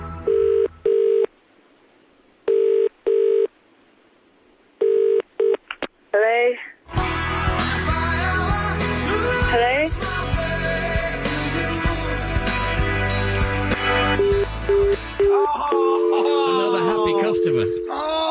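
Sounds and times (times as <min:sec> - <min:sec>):
telephone double-burst ringback tones through the earpiece: 0:00.2 - 0:01.3, 0:02.5 - 0:03.5, 0:04.8 - 0:05.6, 0:14.2 - 0:18.1
loud music: 0:06.9 - 0:15.3
brief electronic phone chirp: 0:14.2 - 0:18.1.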